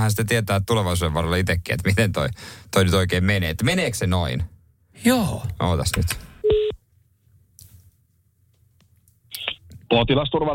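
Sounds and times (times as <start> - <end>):
speech: 0.0 - 6.2, 9.9 - 10.5
electronic phone tone during an outgoing call: 6.4 - 6.8.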